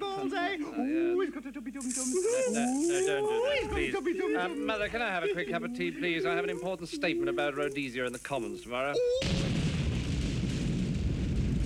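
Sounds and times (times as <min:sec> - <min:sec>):
speech: 0:00.2 - 0:09.6
comedy sketch person explosion sound effect: 0:09.2 - 0:11.6.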